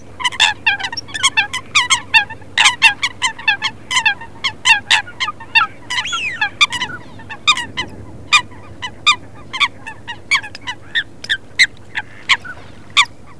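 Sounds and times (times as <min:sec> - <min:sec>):
Eurasian coot calls: 0:00.0 - 0:13.3.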